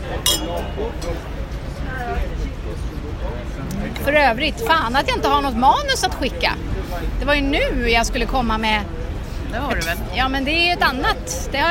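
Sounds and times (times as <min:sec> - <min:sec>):
glasses clinking in a toast: 0:00.0 - 0:01.8, 0:09.7 - 0:10.0
low murmuring voices: 0:00.0 - 0:11.6
speech: 0:00.4 - 0:11.6.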